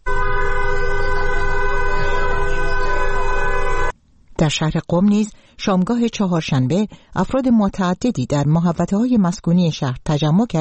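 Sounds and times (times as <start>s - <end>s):
passing cars honking horns continuously: 0.0s - 3.9s
street noise rumbling: 0.0s - 4.0s
speech: 4.4s - 10.5s.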